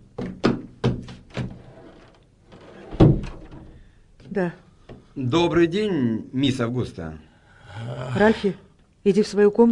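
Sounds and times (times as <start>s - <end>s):
knocking on a door: 0.2s - 1.6s
speech: 4.4s - 4.6s, 5.2s - 9.7s.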